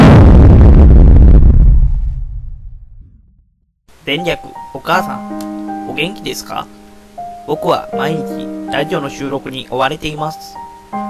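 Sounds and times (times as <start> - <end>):
heavy cannon blast firing a bullet-shaped satellite: 0.0 - 3.4
speech: 4.1 - 6.8, 7.5 - 11.0.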